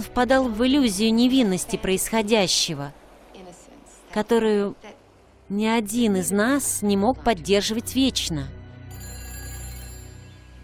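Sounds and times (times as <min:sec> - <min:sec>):
speech: 0:00.1 - 0:03.0, 0:04.2 - 0:08.6
telephone bell ringing: 0:08.9 - 0:10.6.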